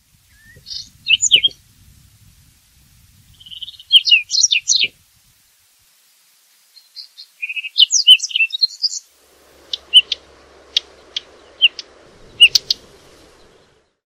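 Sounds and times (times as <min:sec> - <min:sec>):
whinchat singing: 0:00.3 - 0:01.6, 0:03.4 - 0:04.9, 0:06.8 - 0:14.0.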